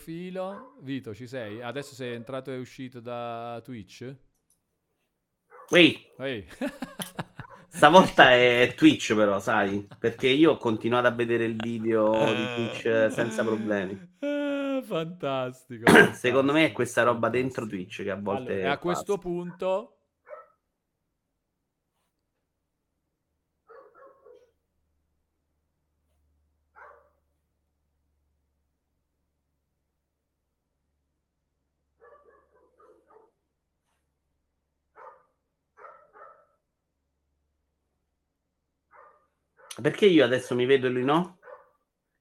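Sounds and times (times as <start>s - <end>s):
speech: 0.0s - 4.3s, 5.7s - 20.0s, 39.8s - 41.4s
dog barking: 0.5s - 0.8s, 5.5s - 5.8s, 7.4s - 7.8s, 20.3s - 20.6s, 23.7s - 24.6s, 26.8s - 27.2s, 32.0s - 33.4s, 35.0s - 36.6s, 38.9s - 39.8s, 41.4s - 41.8s
laughter: 6.4s - 16.5s.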